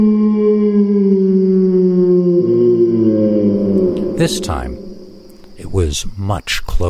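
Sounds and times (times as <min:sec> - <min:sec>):
speech: 0:00.0 - 0:00.3, 0:04.2 - 0:04.8, 0:05.7 - 0:06.8
large dog-like creature howling: 0:00.0 - 0:05.4.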